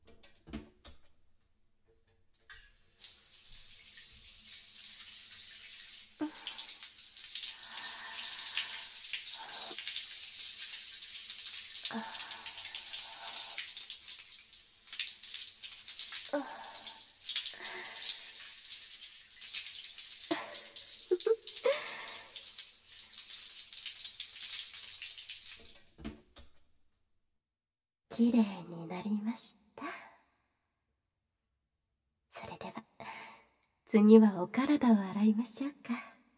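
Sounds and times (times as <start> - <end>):
water running from a tap to rinse after washing: 3.0 - 25.9
speech: 16.3 - 16.6, 28.2 - 28.8, 33.9 - 36.1.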